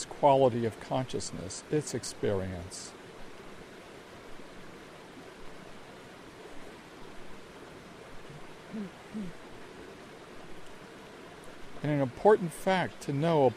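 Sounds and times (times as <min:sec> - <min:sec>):
stream water flowing: 0:00.0 - 0:13.5
speech: 0:00.2 - 0:03.0, 0:08.8 - 0:09.4, 0:11.8 - 0:13.5
low hoots: 0:08.2 - 0:09.7.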